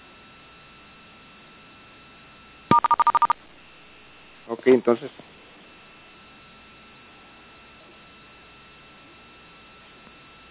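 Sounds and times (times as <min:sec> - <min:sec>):
telephone keypad DTMF tones: 0:02.7 - 0:03.4
speech: 0:04.5 - 0:05.3.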